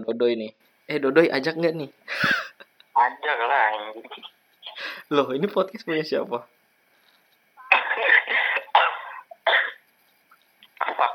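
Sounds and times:
speech: 0.0s - 6.6s
person coughing: 7.7s - 9.8s.

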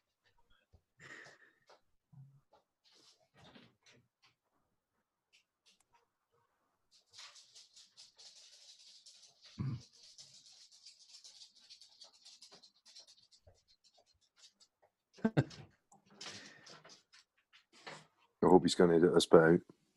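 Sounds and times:
dog scratching and pawing at a door: 6.9s - 14.8s
speech: 15.4s - 15.6s, 18.4s - 19.8s.

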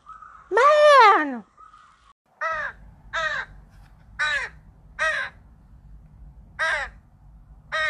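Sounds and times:
crow cawing: 2.4s - 3.6s, 4.2s - 5.4s, 6.6s - 7.0s
steady low rumble of noise: 2.6s - 7.8s.

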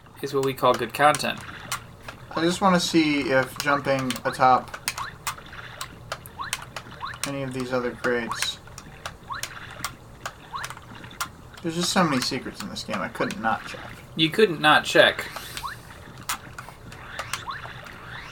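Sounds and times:
speech: 0.2s - 1.5s, 2.3s - 4.8s, 7.3s - 8.5s, 11.6s - 15.4s
ocean water lapping at a boat in a video game: 0.8s - 3.8s, 4.4s - 11.8s, 13.1s - 14.2s, 15.1s - 18.2s.

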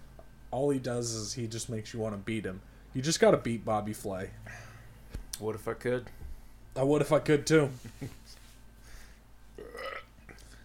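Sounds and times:
low hum: 0.0s - 10.6s
speech: 0.5s - 4.7s, 5.4s - 6.2s, 6.8s - 8.4s
bubbly gurgling burp: 9.6s - 10.1s.

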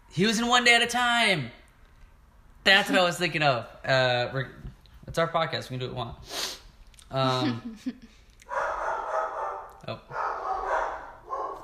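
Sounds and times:
speech: 0.2s - 1.6s, 2.6s - 8.6s, 9.8s - 10.2s
dogs barking at someone outside: 8.4s - 11.6s.

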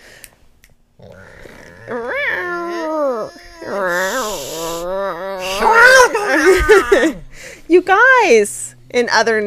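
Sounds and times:
speech: 1.0s - 2.2s, 6.6s - 9.4s
human voice imitating cats about to fight: 1.2s - 7.2s
laughter: 5.6s - 7.2s.

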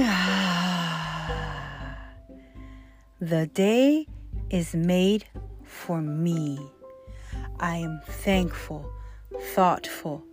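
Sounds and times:
deep breath let out as a long voiced sigh during a guided affirmation exercise: 0.0s - 2.9s
speech: 3.2s - 6.8s, 7.6s - 10.3s.

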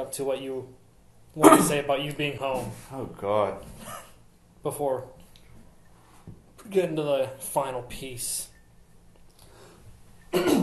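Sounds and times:
speech: 0.0s - 5.2s, 6.6s - 8.5s, 10.3s - 10.6s
harsh raspy throat clearing: 1.4s - 1.8s, 10.3s - 10.6s.

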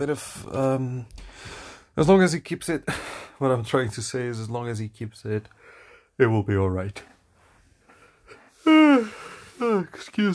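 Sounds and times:
speech: 0.0s - 7.1s, 8.6s - 10.3s
yawn: 8.3s - 9.9s.

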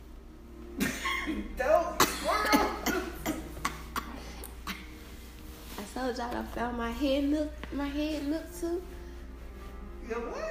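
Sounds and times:
person coughing: 0.8s - 5.0s
speech: 1.3s - 1.8s, 6.1s - 9.0s, 10.1s - 10.4s.

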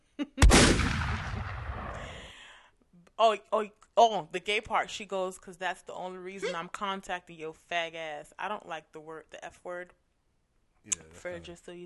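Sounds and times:
single loud gunshot with long booming echo: 0.4s - 2.3s
speech: 3.2s - 10.0s, 10.8s - 11.8s.

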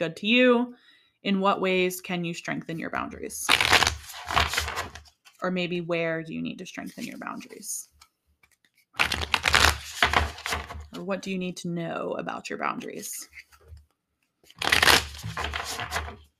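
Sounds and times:
speech: 0.0s - 4.8s, 5.4s - 7.9s, 11.0s - 13.5s
deck of cards being shuffled for a card reading: 3.5s - 5.4s, 6.8s - 11.0s, 12.9s - 16.3s.

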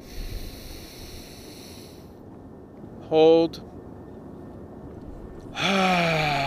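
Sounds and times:
deep inhale through the nose: 0.0s - 2.2s
speech: 3.1s - 3.7s, 5.6s - 6.2s.

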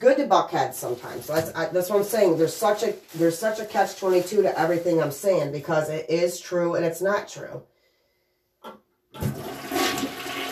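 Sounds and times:
speech: 0.0s - 7.7s
toilet flushing: 9.2s - 10.5s.

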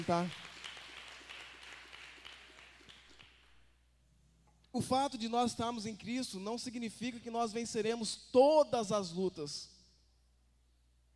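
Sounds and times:
speech: 0.0s - 0.4s, 4.7s - 9.7s
audience applauding: 0.0s - 3.5s.

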